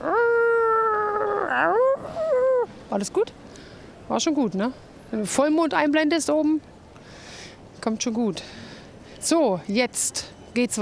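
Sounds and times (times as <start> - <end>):
dog howling: 0.0 - 2.7
speech: 2.9 - 3.5, 4.1 - 6.7, 7.8 - 8.6, 9.2 - 10.7.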